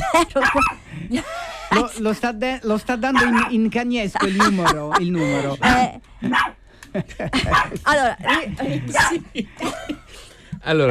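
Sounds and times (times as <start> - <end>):
speech: 0.1 - 10.0, 10.6 - 10.8
small dog yapping and barking: 0.4 - 0.8, 3.1 - 3.6, 5.6 - 6.6, 7.5 - 7.7
laughter: 4.1 - 10.3.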